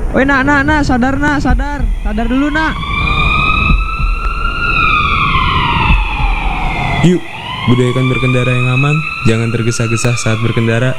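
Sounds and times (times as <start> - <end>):
ambulance siren wailing: 0.0 - 10.9
low rumble of engine and road noise: 0.0 - 10.9
speech: 0.1 - 3.2, 7.0 - 10.9.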